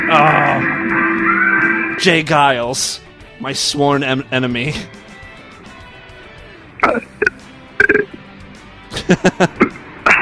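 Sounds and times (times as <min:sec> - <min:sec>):
speech: 0:00.1 - 0:05.0, 0:09.1 - 0:09.6
short burps: 0:06.8 - 0:08.2
laughter: 0:08.9 - 0:10.1.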